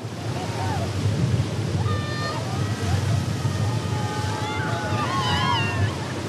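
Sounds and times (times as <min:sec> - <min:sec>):
ocean surf waves breaking: 0:00.0 - 0:06.2
faint voices calling out: 0:01.8 - 0:06.2.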